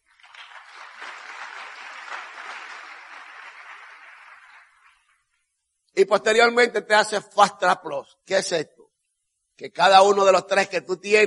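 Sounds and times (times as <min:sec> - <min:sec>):
audience applause: 0:00.0 - 0:05.2
speech: 0:06.0 - 0:08.8, 0:09.6 - 0:11.2.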